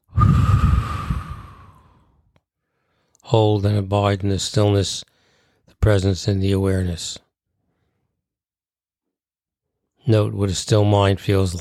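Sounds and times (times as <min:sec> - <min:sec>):
deep slow exhalation during meditation: 0:00.0 - 0:03.2, 0:05.1 - 0:05.6
speech: 0:03.3 - 0:05.1, 0:05.8 - 0:07.2, 0:10.1 - 0:11.6.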